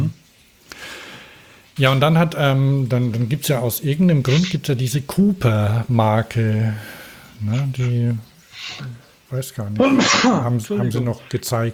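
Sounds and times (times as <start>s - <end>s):
speech: 1.8s - 11.7s
person sneezing: 4.3s - 4.6s, 8.6s - 8.9s, 9.8s - 11.2s.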